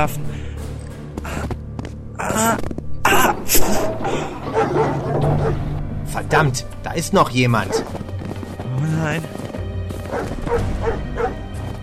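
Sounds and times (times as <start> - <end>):
speech: 0.0 - 0.5, 2.3 - 2.8, 3.4 - 4.8, 5.5 - 8.0, 8.8 - 9.4, 10.1 - 11.1
dog barking: 4.4 - 5.7, 7.6 - 8.0, 10.0 - 11.4.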